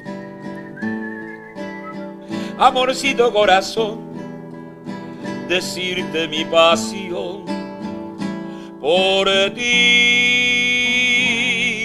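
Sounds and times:
crowd whistling a slow sustained melody: 0:00.0 - 0:02.3
warm musical backing: 0:00.0 - 0:11.8
speech: 0:02.6 - 0:04.0, 0:05.5 - 0:07.6, 0:08.8 - 0:10.3.

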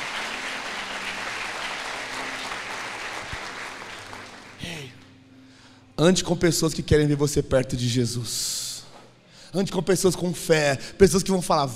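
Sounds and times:
crowd applauding: 0:00.0 - 0:04.9
speech: 0:06.0 - 0:08.5, 0:09.5 - 0:11.7.

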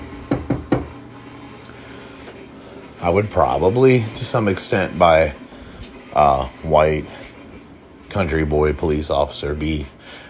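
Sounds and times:
knuckles rapping on a wooden dresser: 0:00.3 - 0:00.9
speech: 0:03.0 - 0:05.4, 0:06.1 - 0:07.2, 0:08.1 - 0:10.2.

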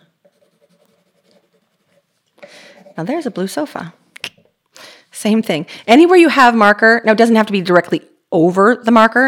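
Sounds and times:
pencil sketching lines on paper: 0:00.2 - 0:03.8
speech: 0:03.0 - 0:04.0, 0:05.2 - 0:09.2.

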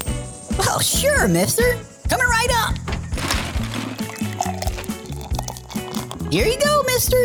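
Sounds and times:
speech: 0:00.9 - 0:02.9, 0:06.3 - 0:07.2
lemonade pouring into a cup: 0:03.2 - 0:06.6.

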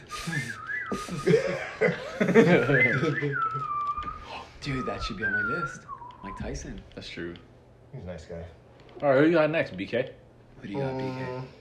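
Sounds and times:
person attempting a wobbly breathy whistle: 0:00.0 - 0:01.4, 0:02.1 - 0:06.5
voices chuckling and snickering: 0:00.0 - 0:06.4
speech: 0:02.2 - 0:03.7, 0:04.6 - 0:11.5.

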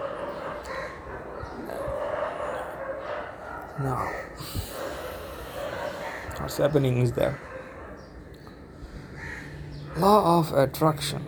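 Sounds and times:
dogs barking and yipping faintly at a home: 0:00.0 - 0:10.2
speech: 0:03.8 - 0:04.7, 0:06.4 - 0:07.5, 0:10.0 - 0:11.2.

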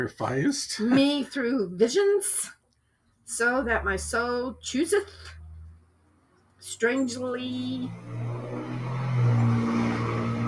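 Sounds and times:
speech: 0:00.0 - 0:02.6, 0:03.3 - 0:05.4, 0:06.6 - 0:08.5
heavy truck engine rumbling as it passes by outside: 0:03.3 - 0:10.4.

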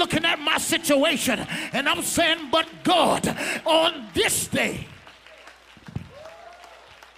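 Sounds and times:
speech: 0:00.0 - 0:04.9
audience clapping hands: 0:00.0 - 0:07.1.

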